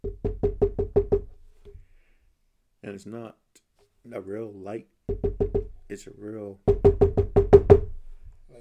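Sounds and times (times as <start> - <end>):
knocking on a wall: 0.0 - 1.8, 5.1 - 5.8, 6.6 - 8.0
speech: 3.0 - 3.4, 4.0 - 6.7.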